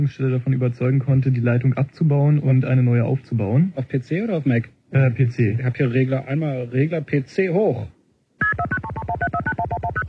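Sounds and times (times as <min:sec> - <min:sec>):
speech: 0:00.0 - 0:08.8
DTMF touch-tone telephone dialing beeps: 0:08.4 - 0:10.0.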